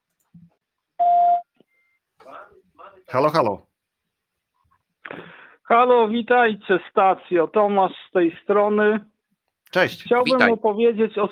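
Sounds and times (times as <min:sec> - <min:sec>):
speech: 0:03.1 - 0:03.7, 0:05.7 - 0:09.1, 0:09.7 - 0:11.3
electronic beep signalling an incoming phone call: 0:10.2 - 0:10.5.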